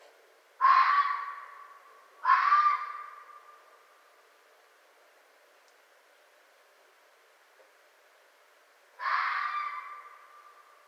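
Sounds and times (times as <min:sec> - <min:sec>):
red fox barking: 0:00.6 - 0:03.6, 0:09.0 - 0:10.5.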